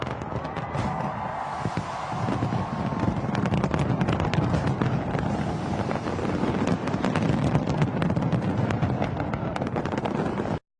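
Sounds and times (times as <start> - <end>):
fireworks display with pyrotechnic explosions: 0.0 - 10.6
steady rumbling roar: 0.7 - 9.3.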